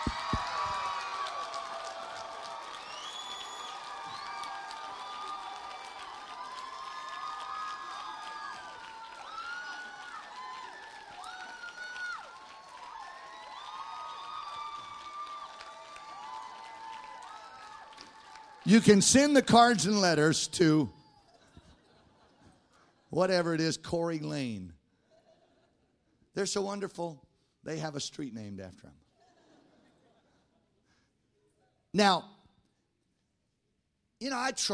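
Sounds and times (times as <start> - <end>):
people whooping, hooting and hollering: 0.0 - 18.8
large audience clapping: 0.0 - 19.8
speech: 18.7 - 21.0, 23.2 - 24.8, 26.4 - 29.0, 31.9 - 32.3, 34.2 - 34.7.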